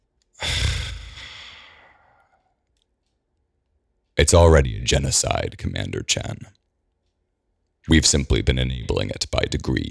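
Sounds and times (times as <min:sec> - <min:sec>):
man breathing out heavily into a microphone: 0:00.4 - 0:02.4
speech: 0:04.2 - 0:06.6, 0:07.9 - 0:09.9.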